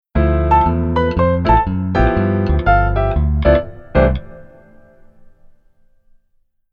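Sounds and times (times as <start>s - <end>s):
keyboard chord voicing: 0.2s - 5.5s.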